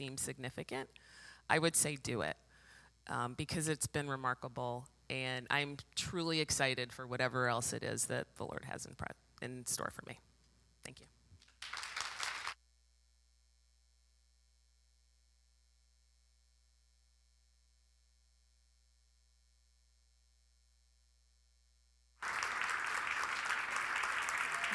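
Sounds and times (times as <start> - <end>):
speech: 0.0 - 2.4, 3.0 - 11.2
loud dense crowd clapping: 11.4 - 12.6, 22.2 - 24.7
audience applause after a testimony: 11.6 - 12.6, 22.2 - 24.7.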